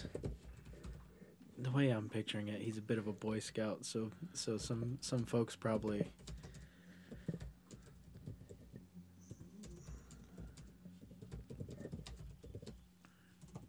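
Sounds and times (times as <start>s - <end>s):
typing on a keyboard: 0.0s - 1.1s, 5.8s - 12.8s, 13.4s - 13.6s
low steady hum: 0.0s - 13.6s
speech: 1.6s - 6.4s.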